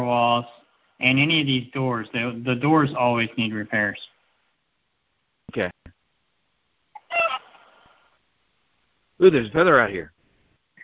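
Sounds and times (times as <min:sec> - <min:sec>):
speech: 0:00.0 - 0:04.2, 0:05.5 - 0:06.0, 0:09.2 - 0:10.2
loose chicken squawking: 0:07.0 - 0:07.8.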